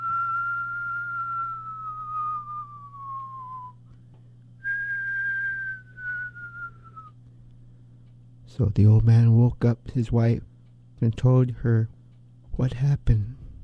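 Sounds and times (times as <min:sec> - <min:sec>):
person whistling long downward-sliding notes: 0:00.0 - 0:03.8, 0:04.6 - 0:07.2
steady low hum: 0:00.0 - 0:13.6
speech: 0:08.6 - 0:12.0, 0:12.6 - 0:13.4.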